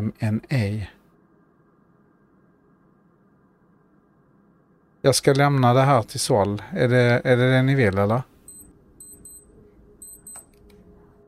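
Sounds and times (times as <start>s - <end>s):
speech: 0.0s - 1.0s, 5.0s - 8.3s
quiet hum: 0.0s - 11.2s
Casio digital watch beeping: 8.5s - 10.5s.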